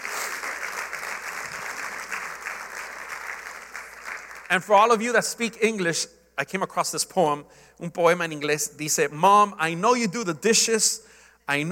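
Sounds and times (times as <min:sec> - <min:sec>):
audience applause: 0:00.0 - 0:04.5
speech: 0:04.5 - 0:11.7.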